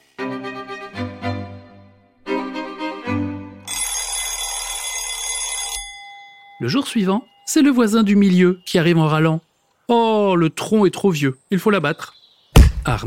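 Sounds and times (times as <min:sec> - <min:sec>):
alarm clock bell clattering loudly: 0:03.7 - 0:09.0
chiming melodic tones: 0:05.8 - 0:09.4
speech: 0:06.6 - 0:12.2, 0:12.8 - 0:13.0.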